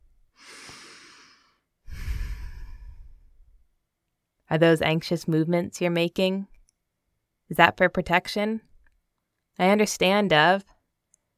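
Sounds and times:
slow deep human breathing: 0:00.4 - 0:03.6
speech: 0:04.5 - 0:06.5, 0:07.5 - 0:08.7, 0:09.6 - 0:10.7.

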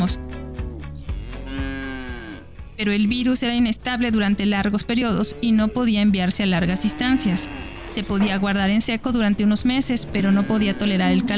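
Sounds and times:
speech: 0:00.0 - 0:00.3, 0:02.8 - 0:11.3
cow mooing: 0:00.1 - 0:02.6, 0:04.8 - 0:11.3.

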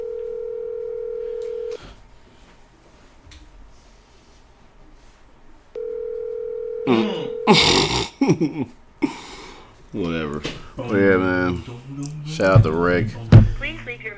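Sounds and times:
phone ringback tone: 0:00.0 - 0:01.8, 0:05.8 - 0:07.5
speech: 0:06.9 - 0:08.8, 0:09.9 - 0:13.4.

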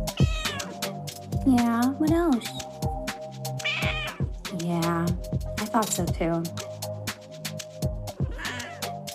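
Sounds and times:
cat meowing: 0:00.1 - 0:00.8, 0:03.6 - 0:04.3, 0:08.2 - 0:08.9
speech: 0:01.4 - 0:02.7, 0:04.6 - 0:06.7.

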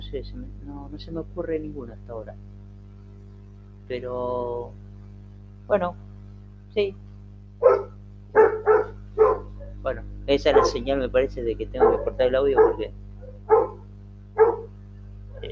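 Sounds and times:
steady low hum: 0:00.0 - 0:15.5
speech: 0:00.1 - 0:02.6, 0:03.9 - 0:04.8, 0:05.7 - 0:06.1, 0:06.8 - 0:07.0, 0:09.8 - 0:13.0
dog barking: 0:07.6 - 0:09.8, 0:10.5 - 0:10.8, 0:11.8 - 0:13.8, 0:14.4 - 0:14.7.

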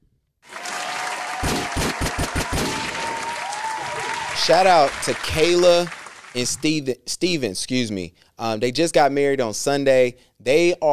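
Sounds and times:
applause-style crowd clapping sound effect: 0:00.4 - 0:06.9
speech: 0:04.5 - 0:10.9.

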